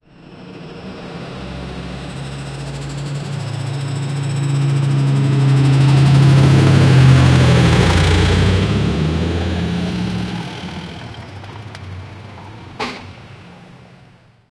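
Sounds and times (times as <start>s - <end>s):
tractor approaching: 0.1s - 14.4s
tractor brakes: 9.8s - 14.2s.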